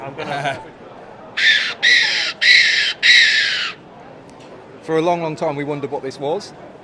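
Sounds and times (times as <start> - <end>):
speech: 0.0 - 0.8, 4.9 - 6.8
stainless steel predator call blown, mimicking a distressed rabbit: 1.4 - 3.8.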